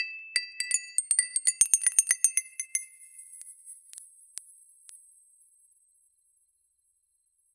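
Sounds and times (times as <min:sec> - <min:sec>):
crisp utensil chime for dessert: 0:00.0 - 0:03.4.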